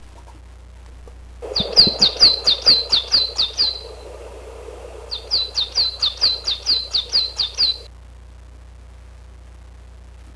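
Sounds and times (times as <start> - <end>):
faint low background hum: 0.0 - 10.3
Coal tit song of high thin two-part notes: 1.4 - 7.9.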